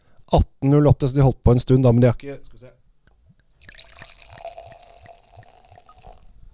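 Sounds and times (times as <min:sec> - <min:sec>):
speech: 0:00.3 - 0:02.8
cider from a local cidery pouring into a glass: 0:03.5 - 0:06.3
fizzy hiss of poured cider: 0:03.6 - 0:06.4.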